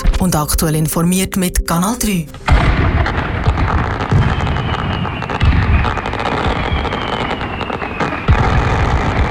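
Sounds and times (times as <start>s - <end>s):
speech: 0.2s - 3.9s
fireworks crackling and banging: 2.4s - 9.2s
faint whistling rocket: 3.0s - 9.2s.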